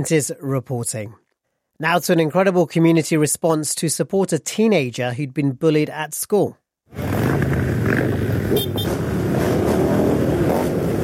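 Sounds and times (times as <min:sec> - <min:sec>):
speech: 0:00.0 - 0:08.7
hundreds of motorbike engines roaring in a convoy: 0:06.9 - 0:11.0.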